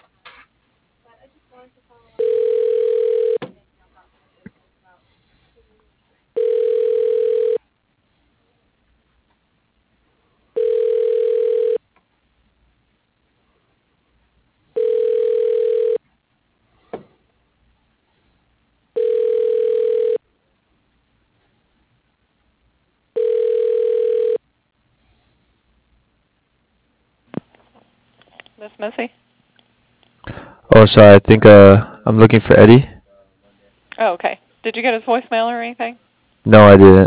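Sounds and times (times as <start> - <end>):
telephone ringback tone while a call is transferred: 2.2 - 3.4, 6.4 - 7.6, 10.6 - 11.8, 14.8 - 16.0, 19.0 - 20.2, 23.2 - 24.4
speech: 28.8 - 29.1, 30.8 - 32.9, 34.0 - 37.0.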